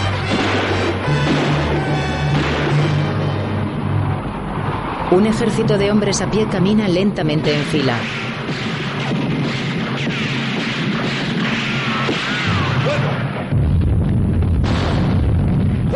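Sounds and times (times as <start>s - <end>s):
battle gunfire: 0.1s - 3.4s, 7.6s - 15.9s
battle explosions: 0.1s - 4.1s, 7.6s - 15.9s
speech: 5.1s - 8.6s.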